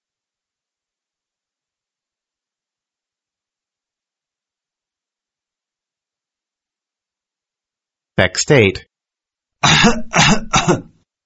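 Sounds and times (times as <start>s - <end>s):
speech: 8.2s - 8.9s, 9.6s - 10.9s
harsh heavy throaty cough: 9.6s - 11.0s.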